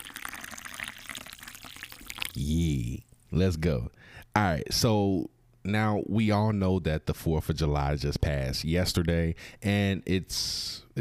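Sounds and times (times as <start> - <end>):
liquor pouring into a glass: 0.0 - 2.5
speech: 2.4 - 10.9.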